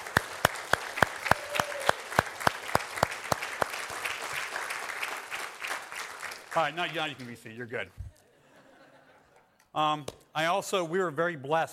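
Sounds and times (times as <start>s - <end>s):
sharp claps: 0.0s - 7.5s
speech: 6.6s - 8.0s, 9.8s - 11.7s
laughter: 8.1s - 9.6s.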